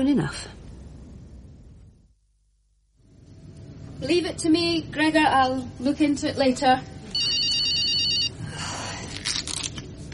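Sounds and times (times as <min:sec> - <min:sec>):
speech: 0:00.0 - 0:00.6, 0:04.0 - 0:07.2
telephone ringing with a trilling electronic bell: 0:07.1 - 0:08.4.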